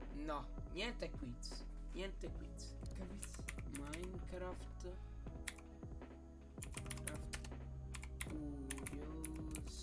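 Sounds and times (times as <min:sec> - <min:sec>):
speech: 0:00.2 - 0:05.4
rapid clicky computer keyboard typing: 0:03.2 - 0:04.2, 0:05.4 - 0:05.6, 0:06.6 - 0:09.7.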